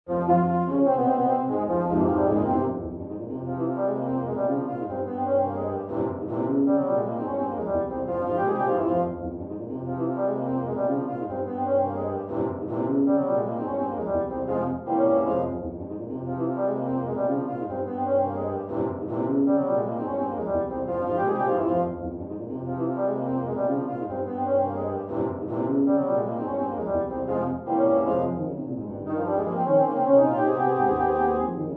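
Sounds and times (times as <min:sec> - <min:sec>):
low brass: 0:00.1 - 0:31.7.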